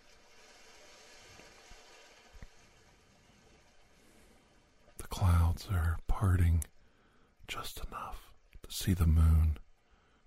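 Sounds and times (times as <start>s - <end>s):
ocean waves at night in misty rain: 0.0s - 5.5s
speech: 5.2s - 6.7s, 7.5s - 9.6s.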